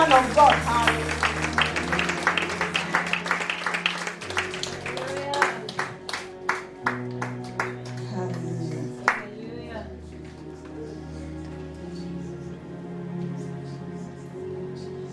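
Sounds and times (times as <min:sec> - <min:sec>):
room full of people applauding in praise: 0:00.0 - 0:09.3
steady organ-like musical drone: 0:00.0 - 0:15.1.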